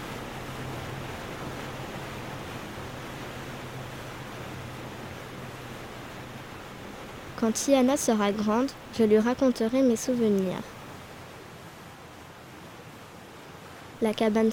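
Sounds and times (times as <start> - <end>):
sea waves rushing past a moving boat: 0.0 - 11.0, 14.0 - 14.5
speech: 7.4 - 10.8, 14.0 - 14.5.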